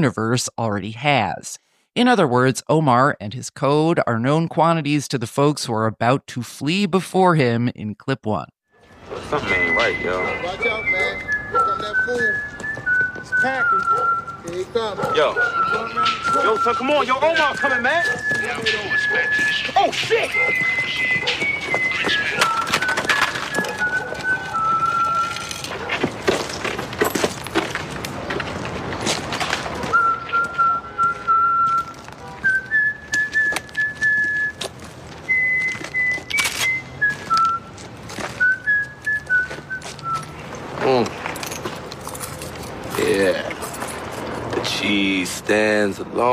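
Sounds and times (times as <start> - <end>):
speech: 0.0 - 11.2, 13.2 - 22.6, 45.5 - 46.3
bustling street noise: 8.7 - 46.3
man whistling a clear melody: 9.2 - 25.7, 29.9 - 40.4
shouted voices: 13.7 - 25.6.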